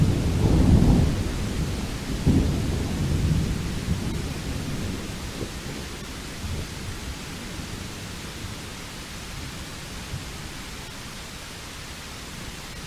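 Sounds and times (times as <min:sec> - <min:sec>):
deep heavy rumble of thunder: 0:00.0 - 0:08.7
steady low wash of rain: 0:00.0 - 0:12.8.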